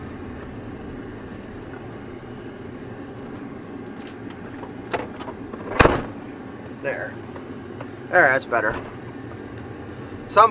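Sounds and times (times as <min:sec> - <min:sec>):
low vehicle rumble: 0:00.0 - 0:10.4
car door shutting with a solid thud: 0:03.3 - 0:06.3
car door clicking open: 0:04.0 - 0:06.2
speech: 0:06.8 - 0:07.5, 0:08.1 - 0:09.0.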